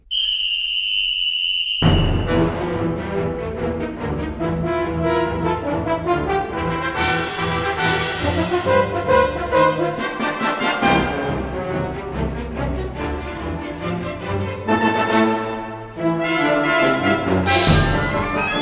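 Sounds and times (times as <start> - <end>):
long shrill referee's whistle blast: 0.0 - 2.4
full orchestra playing busy rhythmic music: 2.1 - 18.6.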